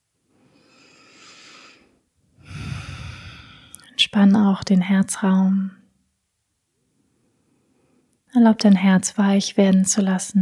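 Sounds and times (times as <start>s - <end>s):
deep breaths in and out during a guided meditation: 0.6s - 4.0s
speech: 4.1s - 5.8s, 8.4s - 10.3s.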